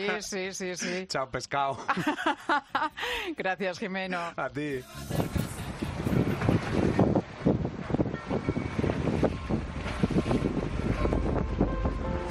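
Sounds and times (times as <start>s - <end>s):
speech: 0.0s - 5.4s
laughter: 1.7s - 3.1s
waves churning and splashing around a swimmer in San Francisco Bay: 4.8s - 12.2s
wind gusting over the waters of San Francisco Bay: 5.0s - 12.2s.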